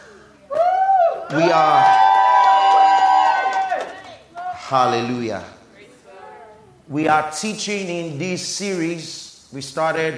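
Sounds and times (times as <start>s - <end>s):
audience shouting and cheering: 0.0s - 5.0s
solo shout: 0.5s - 4.6s
speech: 1.3s - 2.0s, 4.7s - 5.6s, 6.9s - 10.1s.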